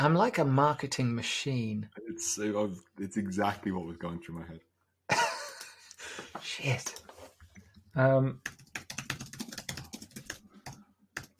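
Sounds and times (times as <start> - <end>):
speech: 0.0 - 5.2, 6.3 - 7.0, 8.0 - 8.6
typing on a computer keyboard: 8.4 - 11.3.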